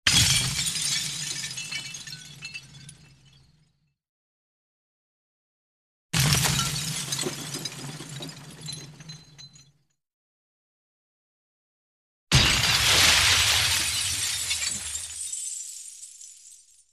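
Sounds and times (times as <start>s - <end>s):
small glass object impacts: 0.1s - 3.5s, 6.2s - 9.7s, 12.3s - 16.7s.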